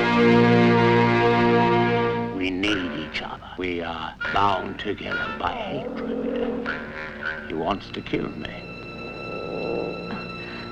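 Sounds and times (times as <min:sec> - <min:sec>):
speech: 0:00.2 - 0:00.4, 0:03.6 - 0:08.7
faint constant hum: 0:00.6 - 0:10.7
cat purring: 0:02.4 - 0:10.7.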